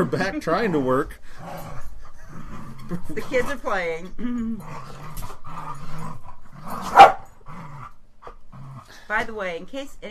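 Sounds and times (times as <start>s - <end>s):
speech: 0.0s - 7.1s, 9.0s - 10.0s
dogs growling and grumbling while playing: 0.0s - 9.4s
dog barking sharply while playing: 6.8s - 7.3s.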